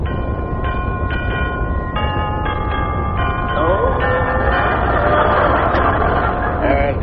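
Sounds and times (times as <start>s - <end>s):
doorbell chiming: 0.0s - 6.6s
loud constant rumbling noise: 0.0s - 7.0s
laughter: 3.6s - 7.0s.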